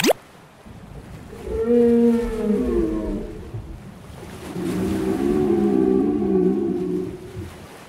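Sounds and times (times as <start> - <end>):
low rumble of ocean water: 0.0 - 7.8
long moaning whale calls: 0.8 - 7.6.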